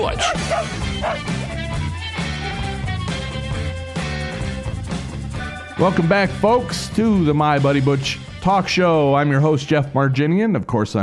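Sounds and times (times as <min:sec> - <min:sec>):
speech: 0:00.0 - 0:01.6, 0:05.8 - 0:11.0
upbeat music with a bouncing bass line: 0:00.0 - 0:09.9
dog barking: 0:00.1 - 0:01.4.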